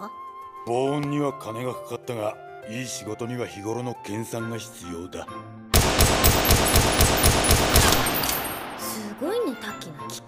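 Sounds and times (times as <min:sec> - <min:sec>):
speech: 0:00.0 - 0:05.6, 0:09.2 - 0:10.2
rapid gunfire with live rounds in an underground shooting range: 0:05.8 - 0:09.2.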